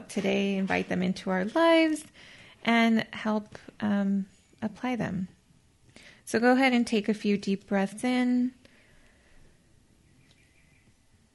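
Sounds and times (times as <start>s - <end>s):
quiet hum of ambient noise: 0.0s - 11.3s
speech: 0.1s - 5.4s, 6.3s - 8.6s
faint birds chirping outdoors: 10.0s - 11.1s.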